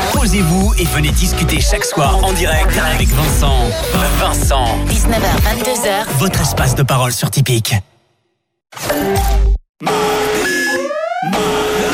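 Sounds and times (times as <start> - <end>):
speech: 0.2 - 7.9, 8.7 - 10.1
electronic beeping alarm: 10.0 - 11.9.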